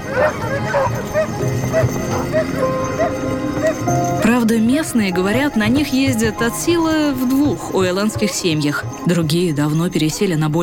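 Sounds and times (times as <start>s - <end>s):
pack of sled dogs barking and yipping: 0.0s - 4.6s, 7.7s - 9.1s
speech: 4.6s - 10.6s.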